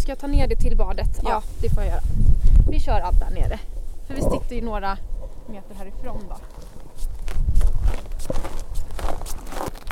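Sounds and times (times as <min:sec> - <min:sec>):
faint noise: 0:00.0 - 0:09.9
speech: 0:00.1 - 0:06.6
footsteps walking toward a ladder: 0:05.2 - 0:09.9.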